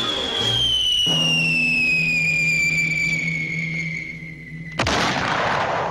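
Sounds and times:
cartoon artillery whistle for a falling coyote: 0.0 - 5.2
loud boom of impact: 4.8 - 5.8.

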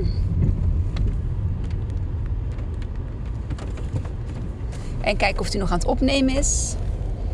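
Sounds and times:
road noise from inside a moving car: 0.0 - 7.3
faint clicks and rattles inside a moving car: 0.1 - 5.7
speech: 5.0 - 6.8.

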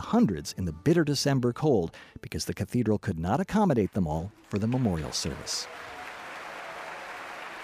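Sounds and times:
speech: 0.1 - 6.0
large audience applause in a concert hall: 4.3 - 7.6.

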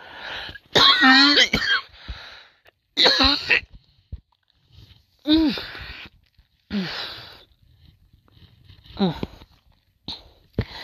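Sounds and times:
person coughing: 0.7 - 1.9, 3.0 - 3.8.

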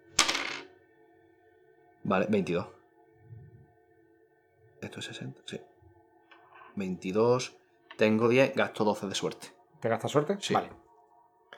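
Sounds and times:
dice clattering onto a tabletop: 0.2 - 0.6
speech: 2.1 - 2.8, 5.0 - 5.7, 6.8 - 10.8.

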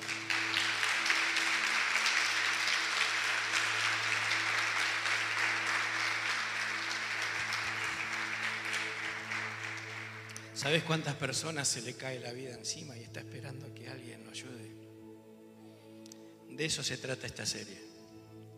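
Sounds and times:
audience applauding: 0.0 - 10.7
speech: 10.6 - 14.8, 16.6 - 17.9.

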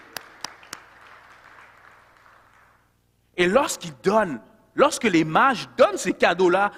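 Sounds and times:
sharp claps: 0.0 - 2.8
crowd applauding: 0.0 - 2.9
speech: 3.4 - 6.7.

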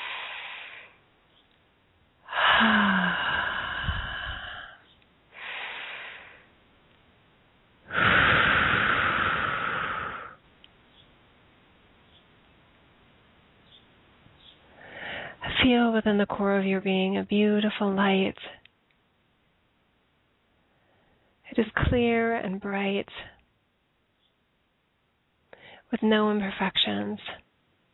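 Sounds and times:
deep breaths in through the nose and out through the mouth during a guided meditation: 0.0 - 1.0, 2.2 - 6.5, 7.9 - 10.4, 14.7 - 15.4
speech: 15.7 - 18.6, 21.9 - 23.3, 25.9 - 27.4.

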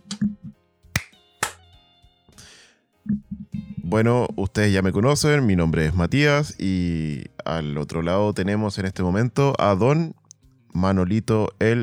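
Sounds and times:
hand claps: 1.0 - 1.6
speech: 3.9 - 10.2, 10.8 - 11.8.

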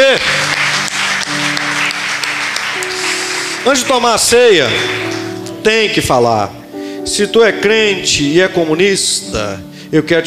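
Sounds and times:
audience applauding: 0.0 - 5.4
sustained musical tones like an organ or keyboard: 0.0 - 10.2
speech: 3.6 - 10.2.

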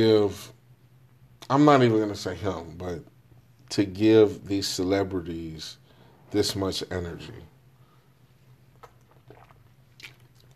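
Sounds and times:
speech: 0.0 - 0.5, 1.5 - 3.1, 3.7 - 7.5
steady low hum: 0.0 - 10.5
person drinking water: 8.7 - 10.5.

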